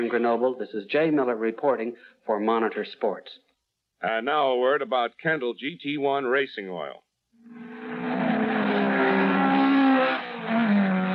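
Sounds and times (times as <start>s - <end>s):
speech: 0.0s - 7.7s
high-performance car engines revving: 7.5s - 11.1s.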